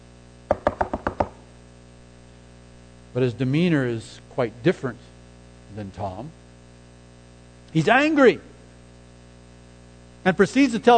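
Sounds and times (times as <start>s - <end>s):
quick firm knocks on a door: 0.5s - 1.4s
speech: 3.1s - 5.1s, 5.7s - 6.4s, 7.7s - 8.5s, 10.2s - 10.9s.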